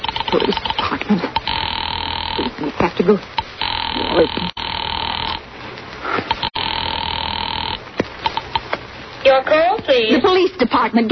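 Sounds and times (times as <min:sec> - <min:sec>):
speech: 0:00.3 - 0:01.4, 0:02.6 - 0:04.6, 0:09.9 - 0:11.1
telephone ringing through on the line to an operator during a police call: 0:01.4 - 0:02.5, 0:03.4 - 0:05.4, 0:06.3 - 0:08.6.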